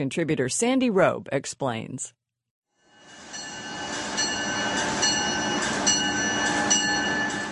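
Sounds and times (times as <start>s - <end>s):
speech: 0.0s - 2.2s
high-speed train running with electric whine: 2.9s - 7.5s.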